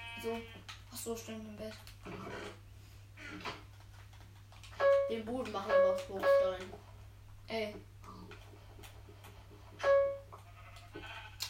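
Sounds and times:
steady low hum: 0.0 - 11.4
speech: 0.2 - 3.7, 5.1 - 6.9, 7.5 - 8.2
video game sheep bleating: 10.4 - 11.4.

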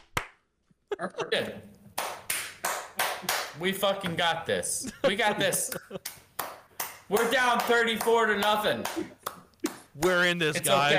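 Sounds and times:
hand clapping: 0.0 - 0.4, 2.0 - 3.6, 5.4 - 10.2
laughter: 0.9 - 1.7, 3.2 - 6.2, 8.2 - 10.9
speech: 1.0 - 1.8, 3.2 - 6.2, 7.1 - 9.2, 10.0 - 10.9.

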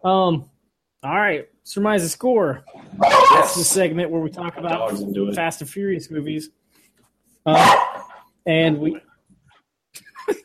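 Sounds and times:
speech: 0.0 - 6.6, 7.4 - 9.1
dog barking: 2.9 - 3.8, 7.5 - 8.2.

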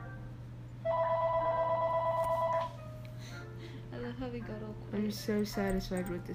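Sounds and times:
low hum: 0.0 - 6.3
phone ringing with an electronic tone: 0.8 - 2.8
speech: 4.3 - 6.3.

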